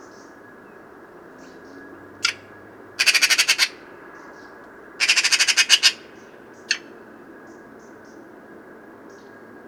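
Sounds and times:
single rasping note of a Eurasian magpie: 0:02.2 - 0:02.4, 0:03.0 - 0:03.8, 0:05.0 - 0:06.9
Eurasian magpie chattering: 0:03.0 - 0:03.8, 0:05.0 - 0:06.8.

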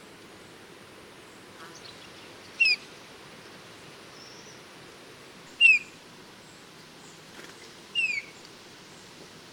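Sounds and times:
quiet background hiss: 0:00.0 - 0:09.5
Eurasian bullfinch Pyrrhula pyrrhula plaintive falling whistles: 0:05.6 - 0:05.9, 0:08.0 - 0:08.3.

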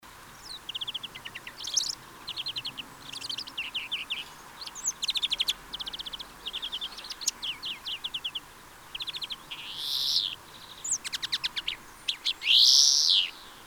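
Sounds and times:
European greenfinch Chloris chloris twittering: 0:00.4 - 0:08.4, 0:09.0 - 0:13.6.

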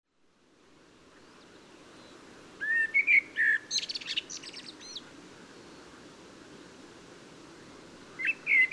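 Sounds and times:
Common blackbird Turdus merula song: 0:01.1 - 0:06.0, 0:07.6 - 0:08.7.

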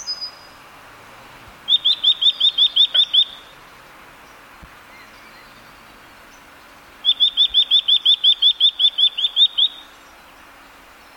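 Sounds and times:
Eurasian nuthatch Sitta europaea giving clear whistled notes: 0:01.7 - 0:03.5, 0:07.0 - 0:09.9.

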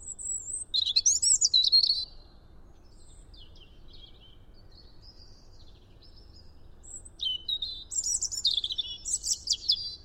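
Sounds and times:
European robin singing: 0:00.0 - 0:10.0
faint low background noise: 0:00.0 - 0:10.0.

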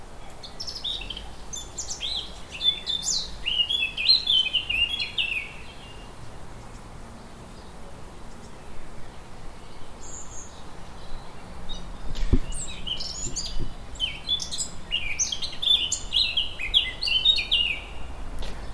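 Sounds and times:
male Eurasian blackcap Sylvia atricapilla singing in a tree near a creek: 0:00.2 - 0:06.0, 0:09.6 - 0:18.0.

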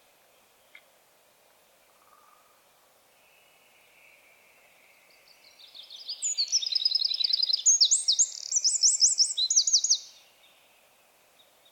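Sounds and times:
Eurasian wren Troglodytes troglodytes singing: 0:05.2 - 0:10.6.

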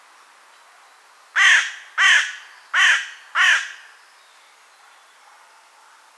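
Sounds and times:
carrion crow Corvus corone giving harsh hoarse caws: 0:01.4 - 0:03.9.

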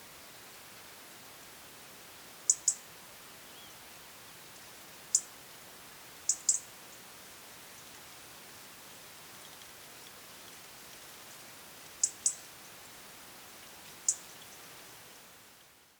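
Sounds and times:
steady faint hiss: 0:00.0 - 0:15.9
European robin Erithacus rubecula giving very high ticks: 0:02.5 - 0:02.9, 0:05.1 - 0:05.3, 0:06.3 - 0:06.7, 0:12.0 - 0:12.5, 0:14.0 - 0:14.6.

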